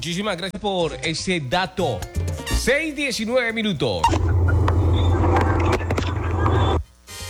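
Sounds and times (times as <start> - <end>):
speech: 0.0 - 4.5
car engine rumbling in slow traffic: 4.0 - 6.8.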